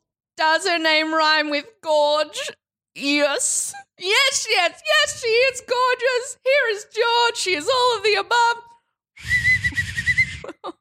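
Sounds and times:
speech: 0:00.4 - 0:09.5
feeble breathy attempted whistle: 0:09.2 - 0:10.4.

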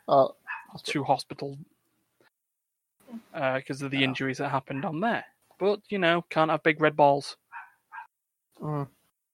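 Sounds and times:
speech: 0:00.1 - 0:01.8, 0:03.1 - 0:07.4, 0:08.6 - 0:09.0
small dog yapping and whining bark: 0:00.5 - 0:00.8, 0:07.5 - 0:08.1.

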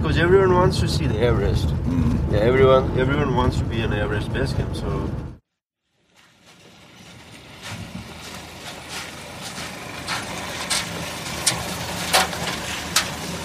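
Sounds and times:
small car engine and road rumble on a rough bumpy road: 0:00.0 - 0:13.4
speech: 0:00.1 - 0:05.3
rattling jolts of small car on bumpy road: 0:07.5 - 0:13.4.

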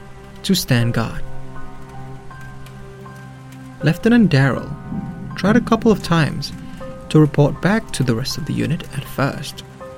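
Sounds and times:
heavy rain pouring: 0:00.0 - 0:09.9
speech: 0:00.4 - 0:01.3, 0:03.8 - 0:09.7
low sustained hum: 0:04.5 - 0:07.8.

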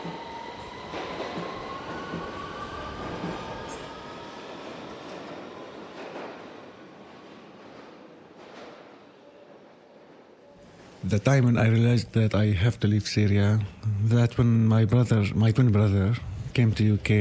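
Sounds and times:
London Underground train running along the rails at rush hour: 0:00.0 - 0:11.8
speech: 0:11.1 - 0:17.1.

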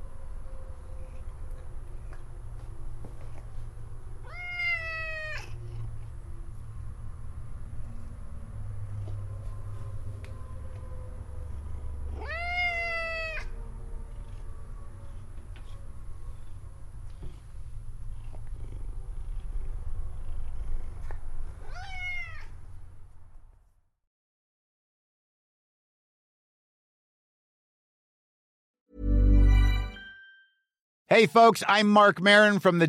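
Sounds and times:
cat meowing: 0:04.2 - 0:05.6, 0:12.1 - 0:13.6, 0:21.6 - 0:22.6
cat purring: 0:13.9 - 0:23.2
speech: 0:31.1 - 0:32.8.

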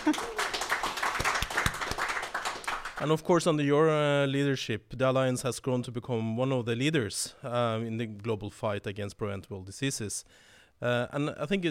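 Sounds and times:
audience applause: 0:00.0 - 0:03.0
speech: 0:00.1 - 0:00.4, 0:03.0 - 0:11.6.

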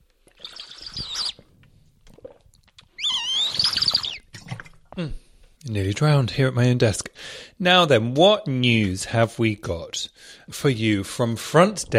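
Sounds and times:
faint gulping from drinking: 0:00.2 - 0:05.3
air whistling through a small hole in a 5-litre water bottle: 0:00.4 - 0:01.4, 0:02.9 - 0:04.3
speech: 0:05.0 - 0:11.9.

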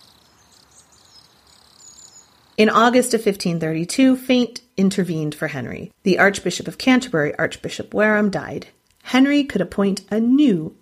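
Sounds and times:
crickets chirping: 0:00.0 - 0:02.8
speech: 0:02.6 - 0:10.8.

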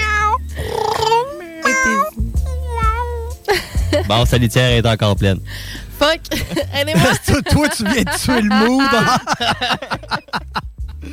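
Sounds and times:
female cat meowing loudly: 0:00.0 - 0:00.4, 0:01.0 - 0:03.3
speech: 0:04.1 - 0:10.4
laughter: 0:06.3 - 0:11.1.

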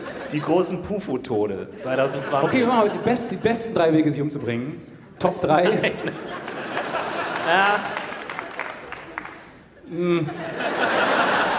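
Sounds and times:
laughter: 0:00.0 - 0:04.5, 0:05.2 - 0:11.5
speech: 0:00.3 - 0:06.5, 0:07.5 - 0:08.0, 0:09.9 - 0:11.0
hand claps: 0:06.5 - 0:09.6.

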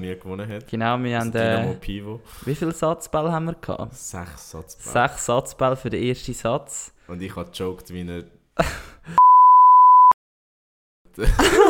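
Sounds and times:
speech: 0:00.0 - 0:09.2, 0:11.2 - 0:11.6
censorship bleep: 0:09.2 - 0:10.2
laughter: 0:11.2 - 0:11.6.

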